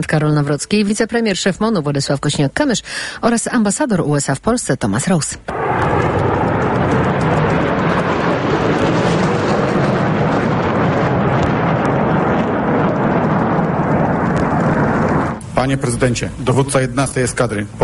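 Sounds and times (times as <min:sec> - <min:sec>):
speech: 0:00.0 - 0:06.2, 0:15.7 - 0:17.8
F-35 fighter jets landing at a military air base in Poland: 0:05.5 - 0:17.8.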